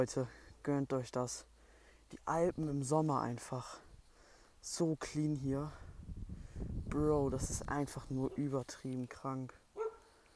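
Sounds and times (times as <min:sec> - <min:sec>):
speech: 0:00.0 - 0:01.5, 0:02.1 - 0:03.8, 0:04.6 - 0:05.8, 0:06.9 - 0:09.6
dog barking: 0:09.8 - 0:10.1.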